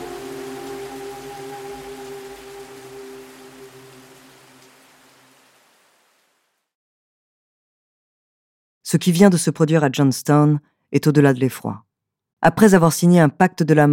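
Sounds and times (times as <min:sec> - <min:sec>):
heavy torrential rain in Guyana near Johnstown: 0:00.0 - 0:06.7
speech: 0:08.9 - 0:13.9.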